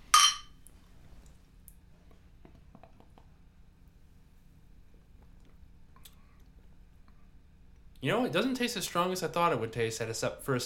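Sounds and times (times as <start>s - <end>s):
glasses clinking in a toast: 0.0s - 0.5s
speech: 8.0s - 10.6s.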